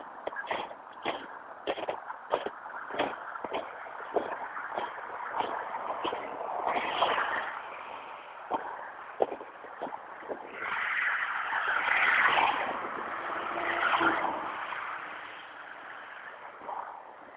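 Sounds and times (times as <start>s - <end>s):
sharp clicks and thumps: 0.0s - 7.4s, 8.4s - 10.6s
vehicle passing on a nearby road: 0.0s - 17.0s.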